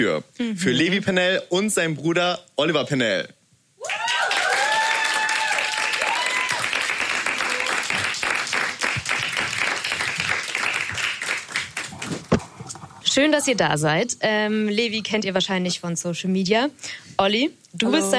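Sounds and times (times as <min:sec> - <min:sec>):
speech: 0:00.0 - 0:04.0, 0:13.2 - 0:18.1
cheers and whoops: 0:03.8 - 0:07.9
audience applause: 0:03.8 - 0:12.6.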